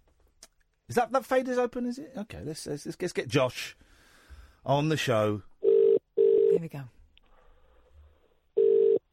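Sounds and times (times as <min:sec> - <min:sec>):
speech: 0:00.9 - 0:03.8, 0:04.6 - 0:05.5, 0:06.6 - 0:07.0
telephone line tone during outgoing call: 0:08.6 - 0:09.1.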